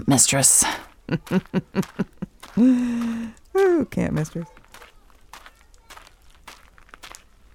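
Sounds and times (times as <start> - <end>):
speech: 0.0 - 4.6
laughter: 0.9 - 3.3
footsteps crunching over dry gravelly ground on a dirt path: 4.1 - 7.5.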